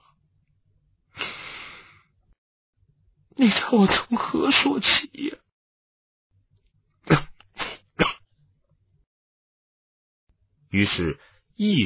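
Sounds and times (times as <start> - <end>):
speech: 3.4 - 5.4, 7.1 - 7.3, 10.8 - 11.8
person coughing: 7.1 - 8.2.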